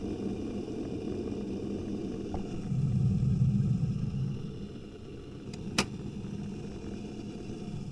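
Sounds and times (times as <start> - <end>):
kettle heating water for tea in an office: 0.0 - 7.9
kettle switch click as the water is ready: 5.5 - 6.0.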